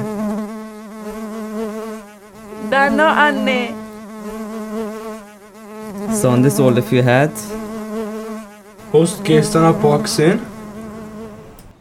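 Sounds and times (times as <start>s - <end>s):
bee buzzing: 0.0s - 11.8s
speech: 2.7s - 3.8s, 6.1s - 7.6s, 8.9s - 10.5s.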